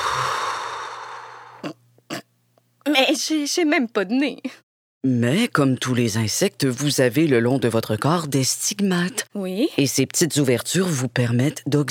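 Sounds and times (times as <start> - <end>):
deep breathing in and out as a breathing exercise: 0.0 - 1.7
speech: 2.9 - 11.9.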